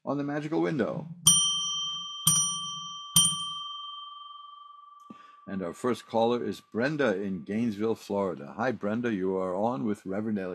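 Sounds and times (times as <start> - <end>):
speech: 0.1 - 1.2, 5.5 - 10.5
bright bell struck: 1.3 - 5.8.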